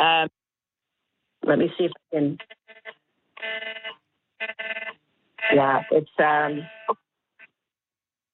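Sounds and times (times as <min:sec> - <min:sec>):
speech: 0:01.4 - 0:02.9, 0:05.5 - 0:07.0
emergency alert tones sounding on several phones: 0:02.4 - 0:07.0.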